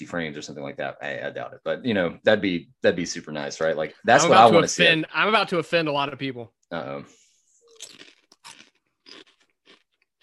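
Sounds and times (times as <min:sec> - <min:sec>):
speech: 0:00.0 - 0:07.2
potato chips crunching while being chewed: 0:07.7 - 0:10.2.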